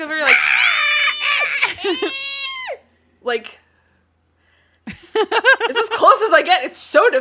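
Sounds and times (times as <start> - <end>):
person imitating a Shiba Inu's scream: 0.2 - 2.8
speech: 1.9 - 2.3, 3.2 - 3.6, 5.2 - 7.1.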